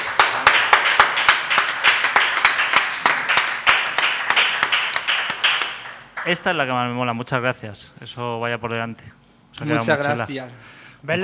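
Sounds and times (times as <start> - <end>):
round of applause from a group of young people: 0.0 - 6.6
speech: 6.3 - 11.2.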